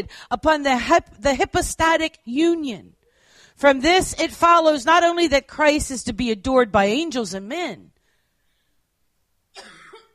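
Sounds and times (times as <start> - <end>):
speech: 0.0 - 3.0, 3.6 - 7.9, 9.6 - 9.8
quiet dry cough during a lecture: 9.5 - 10.1.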